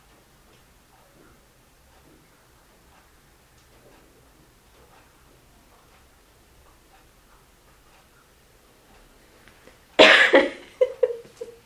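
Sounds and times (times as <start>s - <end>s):
person coughing harshly with hacking coughs: 10.0s - 10.7s.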